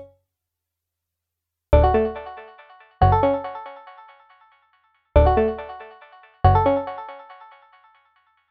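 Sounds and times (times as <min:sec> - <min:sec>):
F sharp minor synth pluck at 140 BPM: 0:01.8 - 0:04.3, 0:05.2 - 0:08.0.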